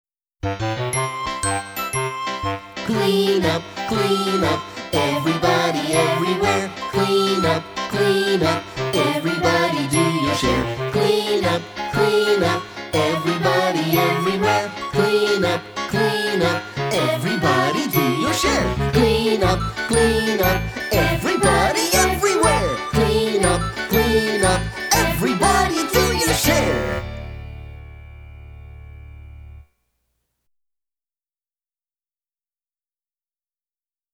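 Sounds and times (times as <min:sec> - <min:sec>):
children's songs: 0:01.0 - 0:27.2.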